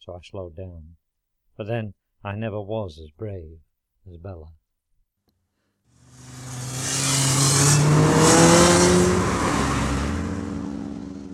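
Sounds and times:
speech: 0.2s - 1.0s, 1.6s - 4.6s
motorbike engine revving past up the street: 6.0s - 11.3s.

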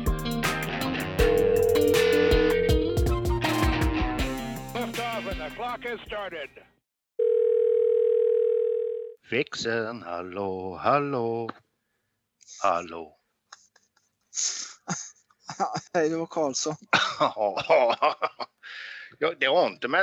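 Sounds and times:
busy jumble of tonal music-like sounds: 0.0s - 5.4s
electronic telephone ringing tone while placing a call: 1.2s - 2.9s, 7.2s - 9.2s
speech: 5.9s - 6.6s, 9.3s - 11.6s, 12.6s - 13.2s, 14.4s - 20.0s
laughter: 13.5s - 18.6s.

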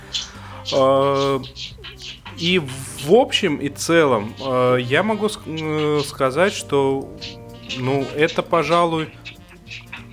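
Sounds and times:
domestic cat scratching and digging to bury something: 0.0s - 3.1s, 7.1s - 10.1s
speech: 0.7s - 9.3s.

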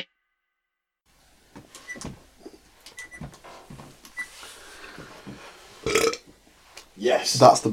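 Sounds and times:
long loud rumbling belch: 5.9s - 6.2s
speech: 7.4s - 7.7s.

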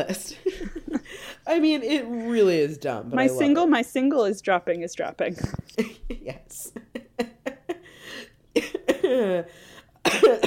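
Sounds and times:
speech: 0.0s - 0.4s, 1.4s - 6.9s, 8.6s - 10.4s
person having a coughing fit: 8.6s - 10.4s.

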